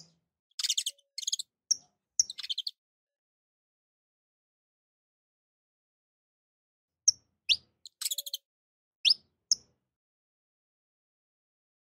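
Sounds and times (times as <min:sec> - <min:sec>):
domestic canary song: 0:00.5 - 0:02.8, 0:07.1 - 0:09.7.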